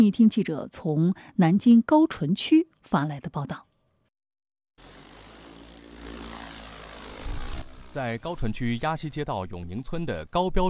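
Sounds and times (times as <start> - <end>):
speech: 0.0 - 3.7, 7.9 - 10.6
crop-spraying agricultural drone propeller buzz over field: 4.8 - 8.9.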